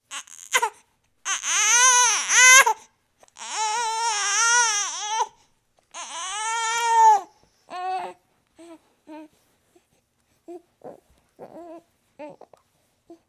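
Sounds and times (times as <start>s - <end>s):
baby crying: 0.1s - 2.8s, 3.4s - 5.4s, 6.0s - 8.2s.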